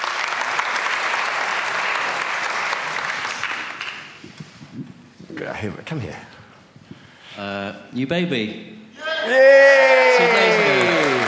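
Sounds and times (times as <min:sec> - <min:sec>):
crowd clapping: 0:00.0 - 0:04.2, 0:10.1 - 0:11.2
speech: 0:05.6 - 0:06.3, 0:07.4 - 0:10.8.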